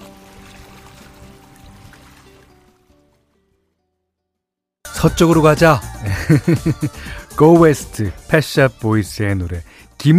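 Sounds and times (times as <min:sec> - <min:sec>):
water of streams and waterfalls pouring and rushing: 0:00.0 - 0:03.4
speech: 0:05.0 - 0:10.1
laughter: 0:06.0 - 0:07.1.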